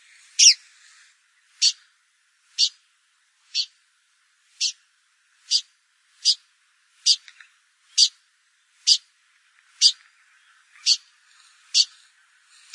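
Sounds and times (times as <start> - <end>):
Blyth's pipit calling with crisp high clipped notes: 0.3 - 0.6, 1.5 - 1.9, 2.5 - 2.8, 3.5 - 3.8, 4.6 - 4.8, 5.4 - 7.3, 7.9 - 8.2, 8.8 - 9.1, 9.8 - 12.0.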